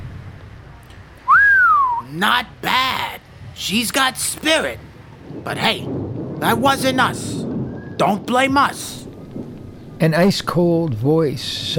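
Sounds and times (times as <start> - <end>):
hiss: 0.0 - 11.7
person whistling: 1.3 - 2.1
speech: 2.1 - 3.0, 3.6 - 7.4, 8.0 - 9.0, 10.0 - 11.7.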